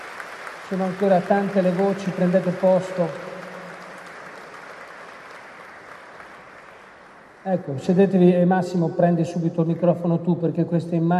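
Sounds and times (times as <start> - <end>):
large crowd applause: 0.0 - 7.7
speech: 0.7 - 3.3, 7.4 - 11.1.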